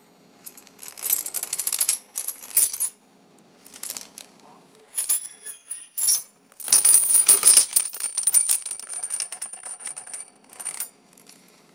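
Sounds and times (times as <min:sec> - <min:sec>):
small metal chains handled: 0:00.5 - 0:02.9, 0:04.9 - 0:11.5.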